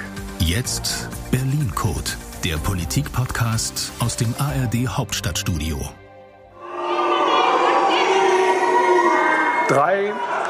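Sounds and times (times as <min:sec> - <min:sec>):
speech: 0:00.5 - 0:06.0, 0:09.7 - 0:10.3
large crowd booing at trade union congress: 0:06.6 - 0:10.4.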